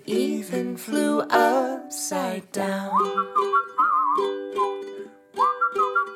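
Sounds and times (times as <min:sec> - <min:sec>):
speech: 0:00.1 - 0:04.3
person whistling a warbling chirpy tune mimicking little birds: 0:02.9 - 0:04.8, 0:05.4 - 0:06.1.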